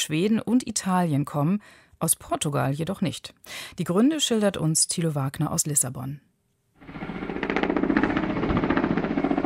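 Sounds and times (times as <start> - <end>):
speech: 0.0 - 6.3
large firefighting helicopter flying overhead: 6.8 - 9.4.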